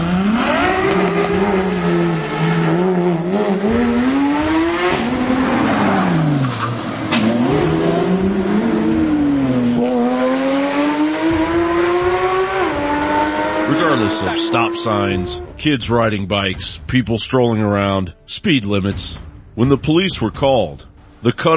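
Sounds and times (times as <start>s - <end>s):
exotic sports car engines revving and accelerating hard in a Beverly Hills neighborhood: 0.0s - 16.6s
speech: 14.3s - 21.5s.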